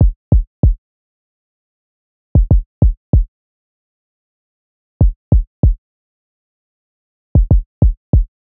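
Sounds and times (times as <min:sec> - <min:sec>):
drum loop with kick: 0:00.0 - 0:00.8, 0:02.4 - 0:03.3, 0:05.0 - 0:05.8, 0:07.4 - 0:08.3.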